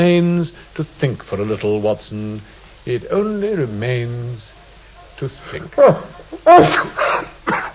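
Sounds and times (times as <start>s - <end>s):
speech: 0.0s - 4.6s, 5.2s - 7.7s
person sneezing after taking snuff: 5.8s - 7.7s.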